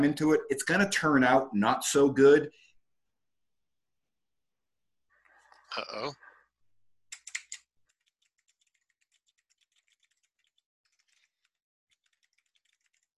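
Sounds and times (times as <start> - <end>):
speech: 0.0 - 2.6, 5.7 - 6.2
rapid typing on a computer keyboard: 7.1 - 13.1.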